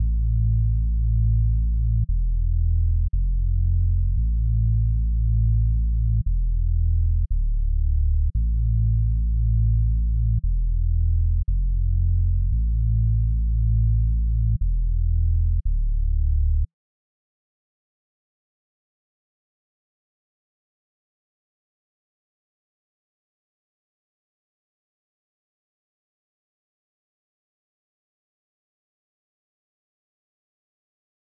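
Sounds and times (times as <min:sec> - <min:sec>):
A minor bass loop at 115 BPM: 0:00.0 - 0:16.7.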